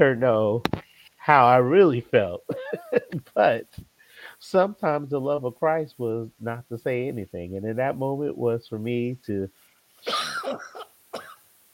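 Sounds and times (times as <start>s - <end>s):
speech: 0.0s - 11.3s
laughter: 2.4s - 3.6s
person coughing from allergies: 10.0s - 11.4s.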